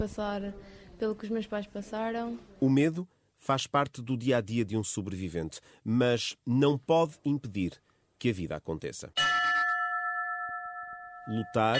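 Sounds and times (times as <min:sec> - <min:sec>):
speech: 0:00.0 - 0:09.3, 0:11.3 - 0:11.7
small hand bell struck in a pediatric ward of a hospital in Porto Portugal: 0:09.2 - 0:11.7.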